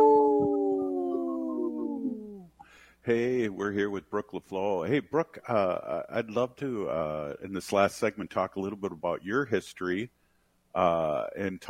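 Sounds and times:
wolf howling: 0.0 - 2.4
speech: 3.1 - 10.2, 10.8 - 11.6.

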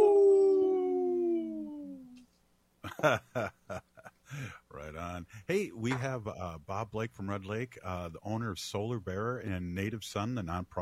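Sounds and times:
lone wolf howling: 0.0 - 2.0
speech: 3.0 - 3.8, 5.2 - 10.8.

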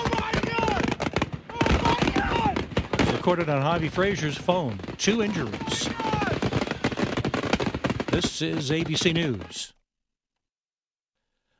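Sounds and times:
people's voices: 0.0 - 6.8, 8.1 - 9.8
fireworks on a barge going off accidentally: 0.0 - 9.7
speech: 3.2 - 6.2, 8.2 - 9.8.

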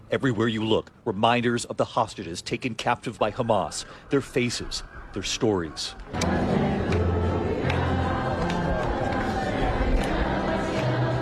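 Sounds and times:
speech: 0.1 - 6.6
large crowd quietly singing a slow chant in Hostages Square, Tel Aviv: 6.0 - 11.2.

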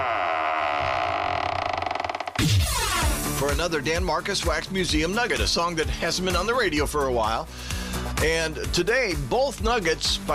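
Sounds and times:
heavy vault door creaking open: 0.0 - 3.2
speech: 2.4 - 10.3.

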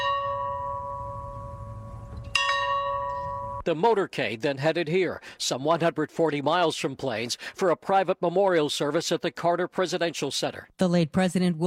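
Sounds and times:
farm bell ringing: 0.0 - 3.7
speech: 3.6 - 11.6.

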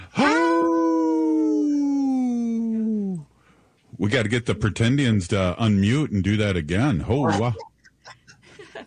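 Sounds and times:
person howling like a wolf: 0.2 - 3.2
speech: 4.0 - 7.7.

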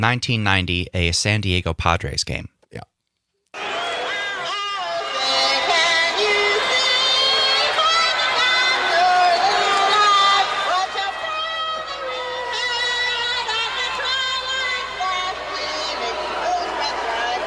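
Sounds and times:
speech: 0.0 - 2.9
large stadium crowd booing and jeering: 3.6 - 17.4
woman singing an anthem off-key over a public address system: 4.4 - 17.4.

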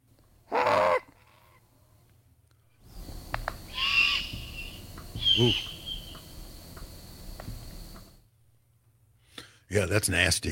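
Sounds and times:
juvenile great horned owl giving harsh raspy screeches: 0.5 - 1.1, 3.7 - 6.3
speech: 5.4 - 5.7, 9.8 - 10.4.

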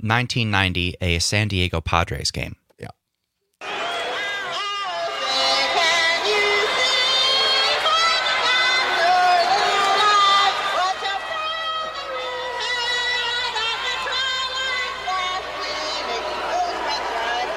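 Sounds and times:
speech: 0.0 - 3.0
stadium crowd booing at a baseball game: 3.6 - 17.5
solo woman singing national anthem with strained wavering voice: 4.1 - 17.5.

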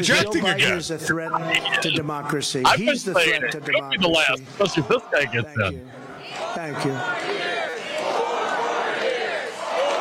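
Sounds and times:
speech: 0.0 - 6.0, 6.6 - 7.5
rally crowd chanting: 2.7 - 9.9.

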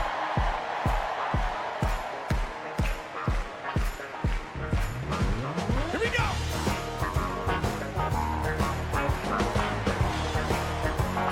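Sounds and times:
crowd cheering and screaming: 0.0 - 3.4, 8.6 - 11.3
large crowd clapping in a steady even beat: 0.0 - 11.3.

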